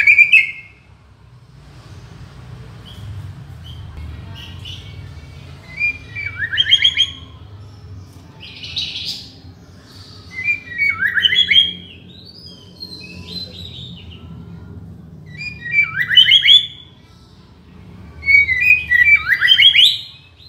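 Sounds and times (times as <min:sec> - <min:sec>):
white-rumped shama singing in Borneo: 0:00.0 - 0:00.9, 0:05.6 - 0:07.4, 0:08.4 - 0:14.2, 0:15.2 - 0:17.0, 0:18.2 - 0:20.4.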